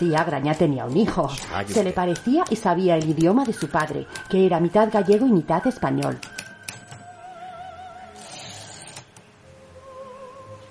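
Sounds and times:
speech: 0.0s - 6.4s
typewriter keys clacking: 0.1s - 7.1s.

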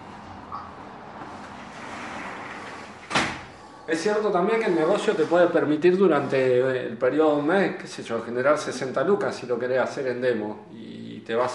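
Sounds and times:
soft rushing scraping movement: 1.2s - 6.7s
door pushed shut with a sharp slam: 2.6s - 3.6s
speech: 3.9s - 11.5s.

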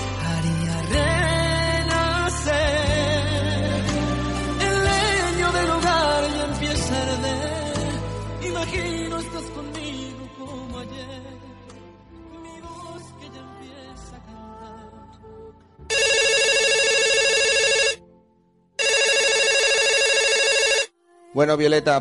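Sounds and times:
soft music: 0.0s - 22.0s
telephone ringing for an incoming call: 15.9s - 18.0s, 18.8s - 20.9s
speech: 21.4s - 22.0s.

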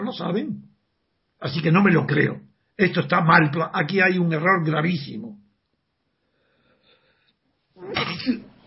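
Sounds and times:
speech: 0.1s - 0.7s, 1.4s - 5.4s
person sneezing: 7.8s - 8.6s.

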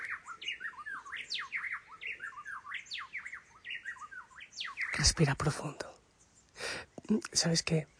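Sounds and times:
dense chorus of birds singing and calling outdoors: 0.0s - 7.9s
speech: 5.0s - 5.9s, 7.1s - 7.9s.

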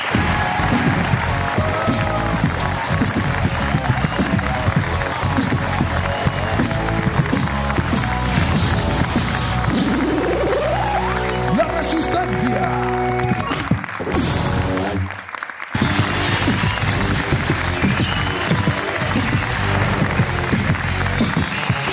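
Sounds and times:
large television studio audience applauding and cheering: 0.0s - 21.9s
music playing: 0.0s - 21.9s.

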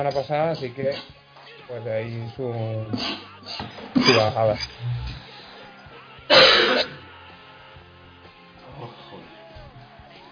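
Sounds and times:
speech: 0.0s - 5.2s
short low throat-clearing grunt: 2.9s - 5.2s, 6.3s - 7.1s
person coughing: 4.0s - 4.8s, 6.3s - 7.0s.

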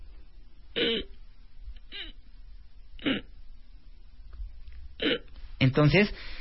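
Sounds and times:
voice imitating sleep apnea choked blocked breathing: 0.8s - 1.2s, 1.9s - 2.2s, 3.0s - 3.3s, 5.0s - 5.3s
speech: 5.6s - 6.3s
quiet breathy pauses: 6.1s - 6.3s.

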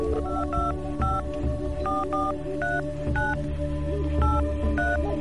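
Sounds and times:
telephone keypad beeps dialing a number: 0.1s - 1.2s, 1.8s - 3.4s, 4.2s - 5.0s.

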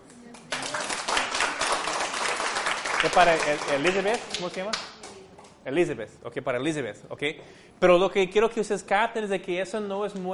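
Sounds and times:
audience applause: 0.4s - 4.8s
speech: 3.0s - 4.9s, 5.6s - 10.3s.

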